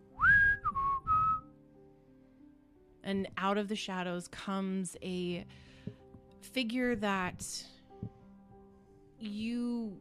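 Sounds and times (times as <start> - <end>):
person whistling a short three-note phrase: 0.1 - 1.5
speech: 3.1 - 5.8, 6.4 - 8.2, 9.2 - 10.0.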